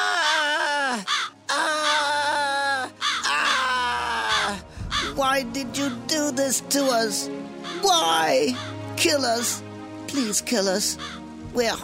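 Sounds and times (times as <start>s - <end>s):
blackbirds screaming, shrieking and cawing: 0.0s - 5.2s, 7.6s - 8.9s, 11.0s - 11.3s
speech: 5.2s - 11.8s.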